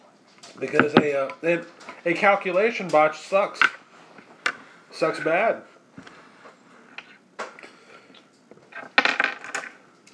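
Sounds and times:
speech: 0.6s - 3.8s, 5.0s - 6.1s
handful of dice rattling across a hard surface: 8.8s - 10.1s.

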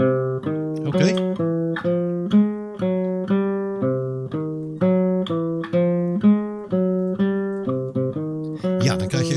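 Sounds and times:
guitar playing a walking bass line: 0.0s - 9.3s
speech: 0.9s - 2.0s.

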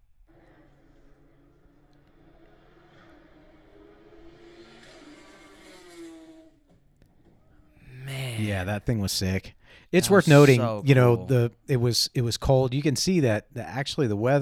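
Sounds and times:
GT2 race car engine accelerating through the gears on a cold day: 0.3s - 6.5s
speech: 8.4s - 14.4s.

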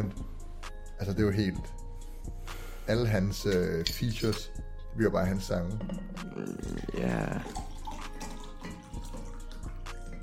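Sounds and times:
speech: 1.0s - 1.8s, 2.9s - 7.7s
water being poured: 5.8s - 10.2s.

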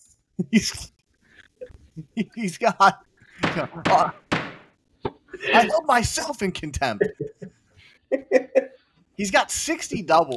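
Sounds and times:
speech: 0.4s - 0.9s, 2.0s - 4.2s, 5.4s - 10.3s
sharp wooden thunks like a gavel on a block: 3.4s - 4.7s.

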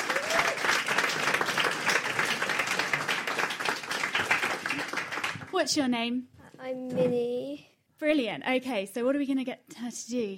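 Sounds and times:
vocal whoop: 0.0s - 0.6s
crowd applause for a volunteer from the audience: 0.0s - 5.6s
speech: 5.6s - 10.3s.

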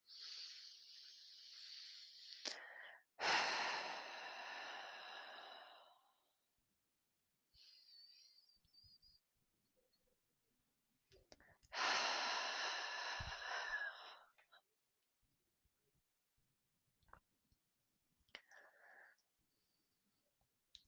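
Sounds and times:
slow deep breaths in and out: 0.0s - 6.4s, 11.4s - 14.6s, 18.3s - 20.0s.

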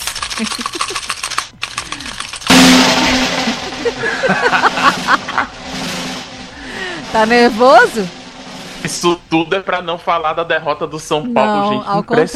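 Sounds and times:
fast rattling drum roll before a reveal: 0.2s - 10.5s
laughter: 0.4s - 1.1s, 3.0s - 5.6s
speech: 0.4s - 1.2s, 3.8s - 5.6s, 7.1s - 8.2s, 8.8s - 12.3s
loud ringing crash: 2.5s - 9.6s.

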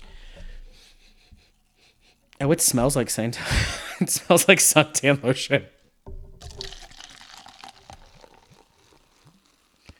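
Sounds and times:
speech: 2.4s - 5.8s
soda pouring with a steady liquid rush: 6.1s - 9.9s
dense crackling fizz of soda bubbles: 6.3s - 9.9s.

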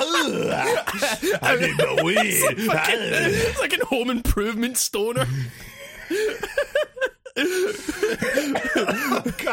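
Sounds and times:
person coughing and sputtering after choking on spit: 0.0s - 3.6s, 7.4s - 9.5s
person laughing: 0.0s - 3.6s, 6.1s - 9.5s
speech: 0.3s - 9.5s.

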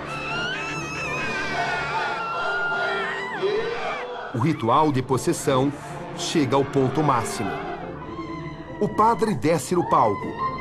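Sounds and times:
audience members screaming and wailing during an exorcism ritual: 0.0s - 4.4s
speech: 4.3s - 7.7s, 8.8s - 10.5s.

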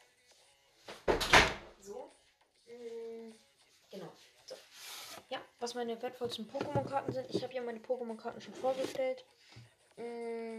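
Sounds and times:
door creaking shut: 1.1s - 1.6s
door thud: 1.1s - 1.7s
speech: 5.6s - 10.4s.

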